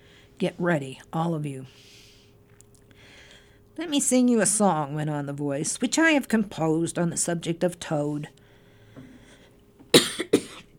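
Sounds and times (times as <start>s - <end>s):
speech: 0.4s - 2.0s, 3.8s - 8.4s
person clearing a frog in the throat with harsh coughs: 9.9s - 10.7s.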